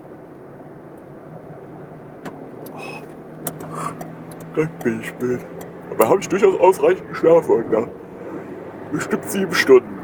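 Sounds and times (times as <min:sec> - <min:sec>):
road and engine rumble in a moving car cabin: 0:00.0 - 0:10.0
clicks and rattles in a car cabin: 0:03.4 - 0:04.6
speech: 0:04.6 - 0:08.0, 0:08.9 - 0:09.9.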